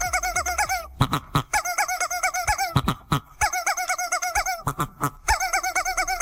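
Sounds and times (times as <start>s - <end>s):
two chickens clucking: 0.0s - 6.1s.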